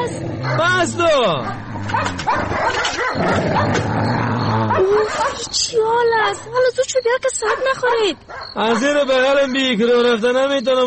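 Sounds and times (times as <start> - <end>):
dog barking: 0.4 - 0.8, 1.4 - 3.8, 4.5 - 5.6, 7.4 - 9.8
speech: 0.5 - 10.8
dog whimpering: 1.8 - 5.5.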